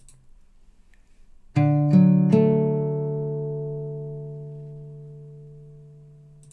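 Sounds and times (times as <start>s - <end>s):
D major chord on guitar: 1.6s - 6.5s.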